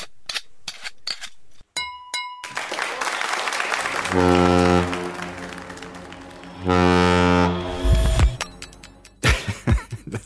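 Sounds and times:
laughter: 2.6s - 6.3s, 9.2s - 10.2s
tanker ship horn blasts: 3.6s - 8.7s.

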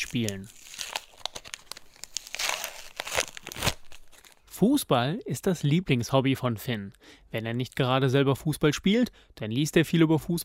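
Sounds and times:
small foil sticker card packets rustling: 0.0s - 4.5s
speech: 0.1s - 0.6s, 4.6s - 10.4s.

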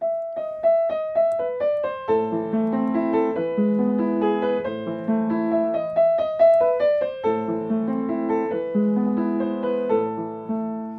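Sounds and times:
famous classical solo piano piece: 0.0s - 10.9s.

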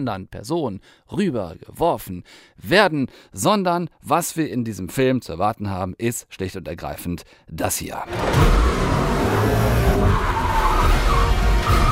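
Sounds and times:
speech: 0.0s - 10.4s
fast car roaring past: 8.1s - 11.9s
skidding car tire squealing: 8.1s - 11.9s.

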